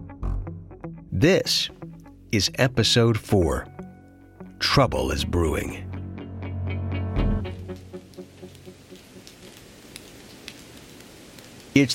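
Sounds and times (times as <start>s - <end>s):
speech: 1.2s - 3.7s, 4.6s - 5.9s, 11.8s - 11.9s
steady cold rain pattering: 7.4s - 11.9s.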